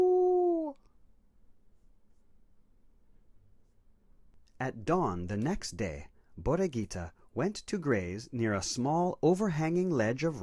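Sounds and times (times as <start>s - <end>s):
person imitating a coyote howl: 0.0s - 0.8s
speech: 4.6s - 10.4s.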